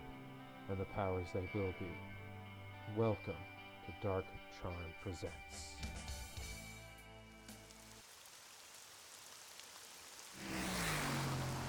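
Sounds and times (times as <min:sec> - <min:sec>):
sustained low musical drone: 0:00.0 - 0:05.8
speech: 0:00.7 - 0:02.2, 0:02.9 - 0:05.9
pouring rain: 0:07.3 - 0:11.6.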